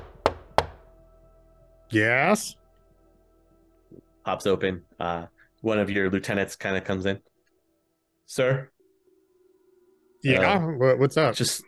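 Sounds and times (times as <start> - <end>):
knocking on a door: 0.0 - 1.0
speech: 1.9 - 2.6, 3.9 - 7.3, 8.3 - 8.7, 10.2 - 11.6.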